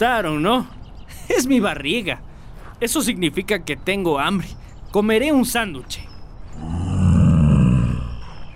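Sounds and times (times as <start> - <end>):
speech: 0.0 - 6.8
deep rumbling bear roar: 6.6 - 8.4.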